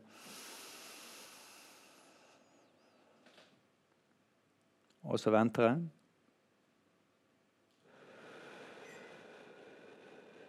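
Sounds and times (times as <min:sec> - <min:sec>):
slow breath in through the nose and out through the mouth: 0:00.0 - 0:03.4, 0:07.8 - 0:10.4
speech: 0:05.1 - 0:06.0.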